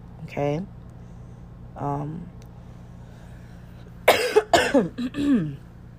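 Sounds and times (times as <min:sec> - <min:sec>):
speech: 0:00.2 - 0:00.8, 0:01.8 - 0:02.4, 0:04.7 - 0:05.7
person coughing harshly: 0:04.0 - 0:05.6.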